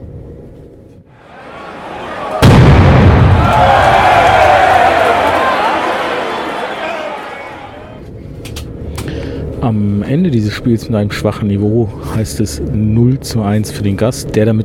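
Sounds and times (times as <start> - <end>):
stadium crowd roaring: 1.1 - 8.0
firecracker bang in a stadium fan section: 2.3 - 5.0
speech: 9.7 - 14.6.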